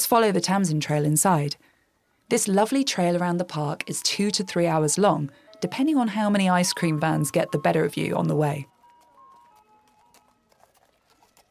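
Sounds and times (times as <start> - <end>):
speech: 0.0 - 1.7, 2.3 - 8.7
horse hooves clip-clopping: 8.0 - 11.4.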